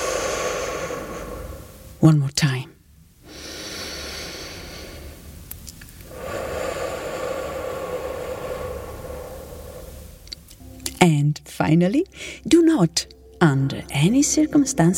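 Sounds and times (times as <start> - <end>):
person breathing slowly in and out: 0.0 - 1.9, 3.2 - 5.4, 6.0 - 10.3
speech: 2.0 - 2.7, 11.0 - 14.9.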